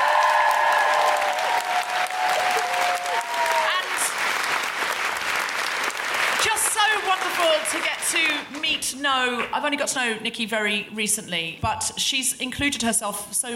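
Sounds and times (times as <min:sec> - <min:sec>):
audience cheers and whoops: 0:00.0 - 0:04.1
audience applause: 0:00.0 - 0:08.6
speech: 0:07.4 - 0:13.5.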